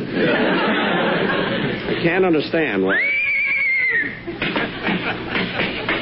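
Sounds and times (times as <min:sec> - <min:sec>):
people laughing: 0:00.0 - 0:02.0, 0:03.3 - 0:05.9
speech: 0:02.0 - 0:03.2
horse whinnying in a house hallway: 0:02.9 - 0:04.2.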